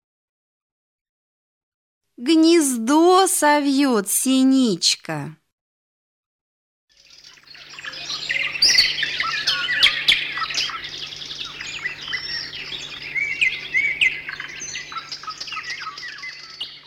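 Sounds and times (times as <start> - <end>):
speech: 2.2 - 5.4
titmouse singing with rapid chirps and twittering: 7.2 - 16.8.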